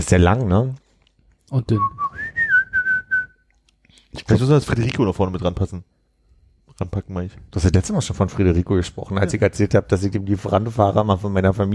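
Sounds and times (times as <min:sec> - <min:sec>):
speech: 0:00.0 - 0:00.8, 0:01.5 - 0:02.0, 0:04.2 - 0:05.9, 0:06.8 - 0:11.7
person whistling an advertising jingle melody: 0:01.8 - 0:03.4.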